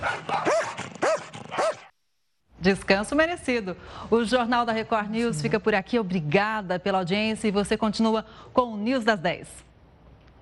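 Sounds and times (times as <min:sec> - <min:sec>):
dog barking: 0:00.0 - 0:01.9
speech: 0:02.6 - 0:09.7.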